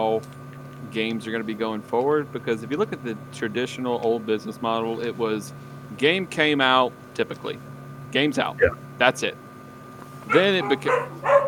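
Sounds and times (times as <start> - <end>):
speech: 0.1 - 9.4, 10.2 - 11.4
dog barking: 10.3 - 11.4.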